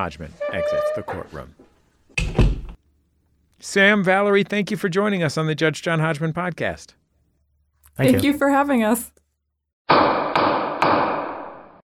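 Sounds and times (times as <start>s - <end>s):
speech: 0.0s - 1.6s, 3.6s - 7.0s, 8.0s - 9.2s
wooden gavel strike: 9.9s - 11.8s.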